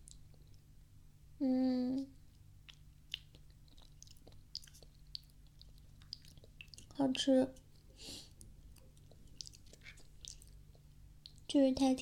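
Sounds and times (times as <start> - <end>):
speech: 1.4 - 1.6, 7.0 - 7.6, 11.6 - 11.9
chewing a sweet food made with brown sugar: 2.2 - 11.5.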